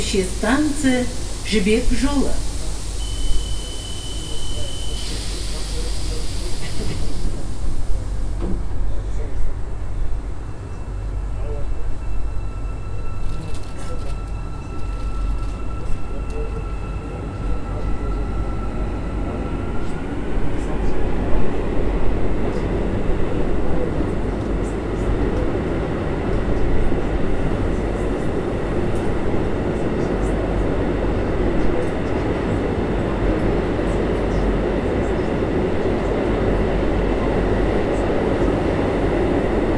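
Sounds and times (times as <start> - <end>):
metro train departing with rumbling roar: 0.0 - 39.7
speech: 0.1 - 2.5
metro train door steady beep tone: 3.0 - 5.1.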